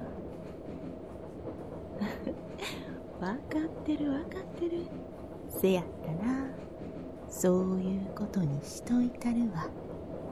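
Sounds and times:
train rolling along the tracks heard from inside a carriage: 0.0 - 10.3
speech: 3.2 - 6.6, 7.3 - 9.8.

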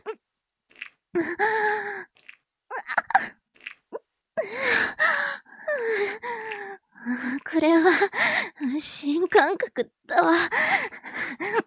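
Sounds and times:
speech: 1.2 - 1.7, 8.8 - 10.8
breathy gasps: 4.4 - 8.6, 10.5 - 11.6.

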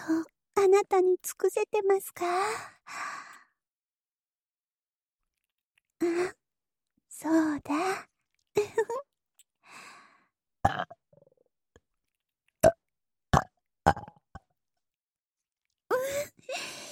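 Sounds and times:
speech: 0.1 - 3.2, 6.0 - 6.4, 7.2 - 9.1, 10.6 - 11.0
soft breathing: 2.4 - 3.6, 9.6 - 10.4, 15.9 - 16.9
voiced burps: 10.6 - 11.3, 13.4 - 14.2.

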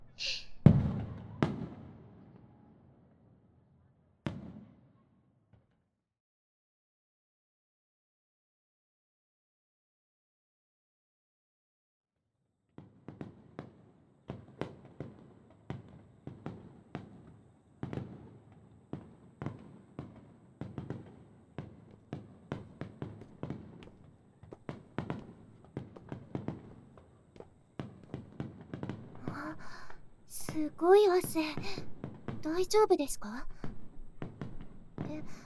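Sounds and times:
barrage of fireworks booming and crackling: 0.6 - 2.4, 4.2 - 4.7, 12.8 - 35.4
speech: 29.4 - 33.5.

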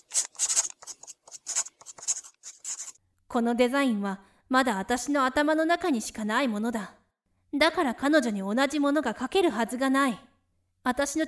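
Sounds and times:
pencil scratching on copy paper: 0.0 - 3.0
speech: 3.3 - 11.2.

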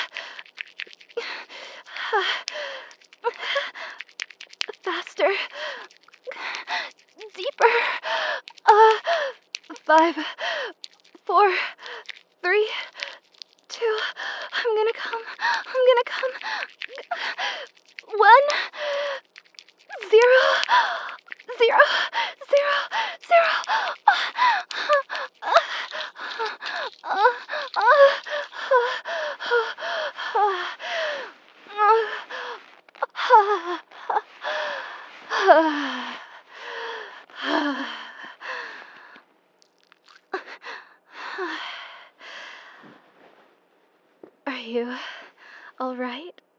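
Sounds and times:
heavy rapid breathing with sharp gasps and breathy vocal sounds: 0.0 - 0.6, 1.2 - 4.1, 5.3 - 10.9, 11.5 - 39.3
speech: 2.1 - 2.6, 9.9 - 10.6.

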